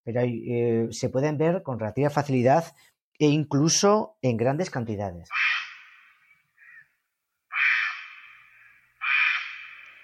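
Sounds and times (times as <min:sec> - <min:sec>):
speech: 0:00.0 - 0:05.5
heron giving harsh croaking calls: 0:05.3 - 0:10.0.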